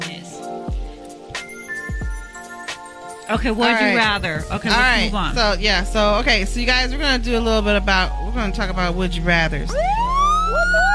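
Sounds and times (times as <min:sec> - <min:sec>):
speech: 0:03.3 - 0:10.0
police car siren: 0:09.7 - 0:10.9.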